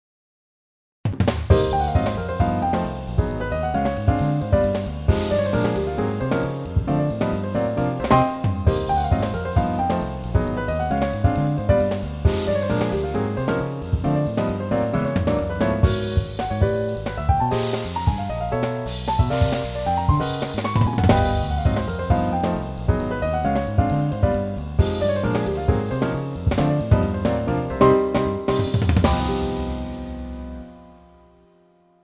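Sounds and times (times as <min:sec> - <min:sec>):
bebop jazz: 0:01.2 - 0:30.7.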